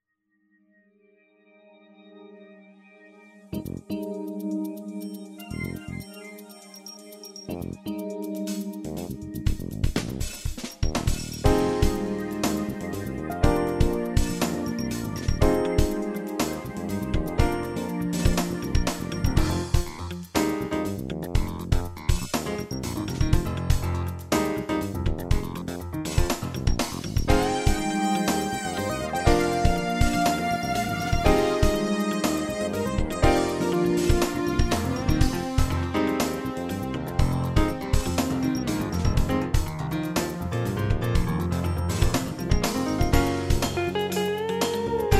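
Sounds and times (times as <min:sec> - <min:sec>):
synth: 0:01.1 - 0:09.5, 0:10.8 - 0:20.1, 0:25.5 - 0:45.1
jazz music: 0:03.5 - 0:45.1.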